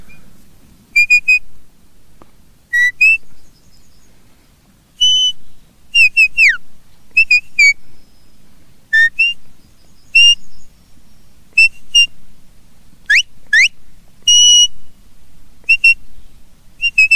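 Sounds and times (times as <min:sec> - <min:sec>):
man whistling a bird-like song of chirps and trills: 0:01.0 - 0:01.5, 0:02.7 - 0:03.5, 0:05.0 - 0:06.6, 0:07.2 - 0:07.8, 0:08.9 - 0:10.7, 0:11.6 - 0:12.1, 0:13.1 - 0:14.8, 0:15.7 - 0:16.0, 0:16.8 - 0:17.1.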